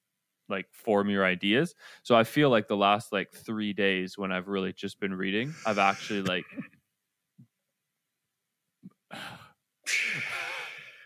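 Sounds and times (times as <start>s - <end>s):
speech: 0.5s - 6.7s, 9.1s - 10.3s
single loud sneeze with catching breaths: 5.5s - 6.7s, 9.9s - 11.0s.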